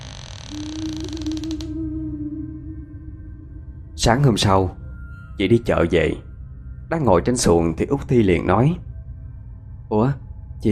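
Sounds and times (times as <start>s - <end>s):
door creaking as it is pulled shut: 0.0s - 1.8s
speech: 0.5s - 0.9s, 4.0s - 4.8s, 5.4s - 6.3s, 6.9s - 8.9s, 9.9s - 10.6s.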